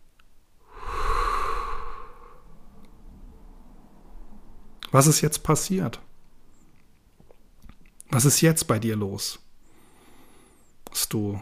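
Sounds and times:
deep breath in and full exhale: 0.6s - 2.8s, 9.6s - 10.8s
speech: 4.9s - 6.1s, 8.2s - 9.4s, 11.0s - 11.4s.

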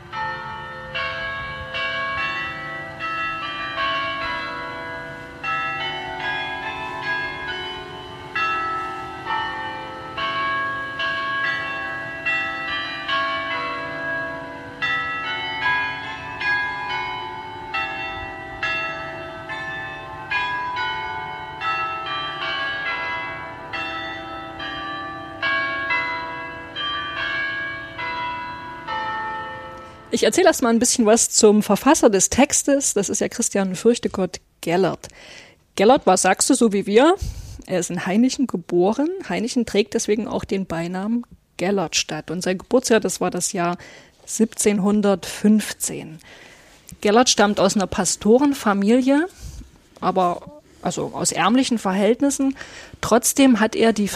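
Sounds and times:
church tower carillon bells playing a melody outdoors: 0.0s - 30.2s
speech: 30.2s - 54.1s.

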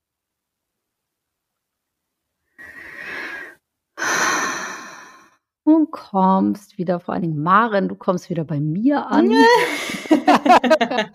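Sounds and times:
deep rasping breaths: 2.6s - 5.4s
speech: 5.8s - 11.1s
laughter: 9.2s - 11.1s.

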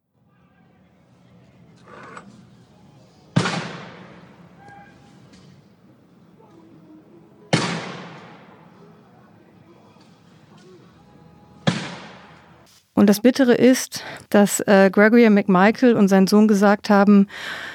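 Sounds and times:
outdoor noise: 0.0s - 17.7s
murmuring: 0.2s - 12.7s
gunshots: 3.4s - 4.6s, 7.5s - 8.8s, 11.6s - 12.5s
speech: 13.0s - 17.7s.

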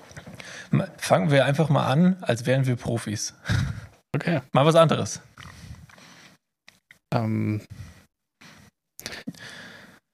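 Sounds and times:
close-miked breathing into microphone: 0.4s - 0.7s, 3.4s - 4.0s, 5.4s - 6.4s, 7.6s - 10.1s
speech: 0.7s - 5.3s, 7.1s - 7.9s.

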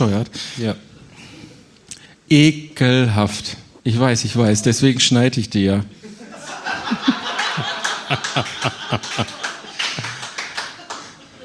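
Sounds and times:
speech: 0.0s - 0.9s, 2.3s - 6.0s, 8.1s - 9.4s
crowd laughing and giggling: 5.9s - 11.4s
canned crowd applause: 7.2s - 11.4s.

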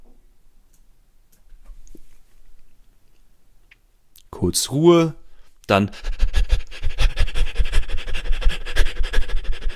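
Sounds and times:
speech: 4.4s - 6.2s
rapid panting breaths in a breathing exercise: 5.7s - 9.7s.

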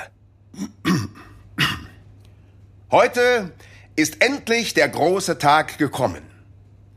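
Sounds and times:
person clearing throat before a speech: 0.5s - 2.0s
speech: 2.9s - 6.3s.

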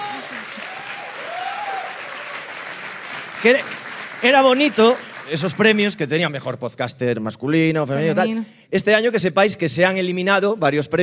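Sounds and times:
audience applause for an award-winning guest: 0.0s - 6.2s
speech: 3.4s - 11.0s.

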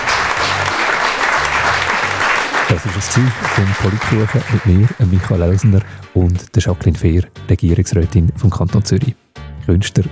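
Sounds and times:
audience applause at the close of a political talk-show interview: 0.0s - 6.0s
speech: 2.7s - 10.1s.

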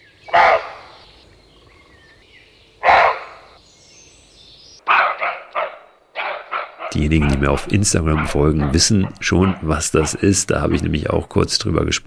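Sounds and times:
roe deer buck barking near a tent: 0.3s - 1.1s, 2.8s - 3.6s, 4.8s - 11.2s
speech: 6.9s - 12.0s.

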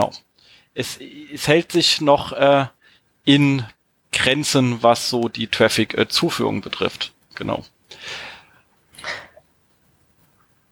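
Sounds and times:
speech: 0.0s - 8.3s
person taking short airy breaths in: 7.9s - 9.4s.

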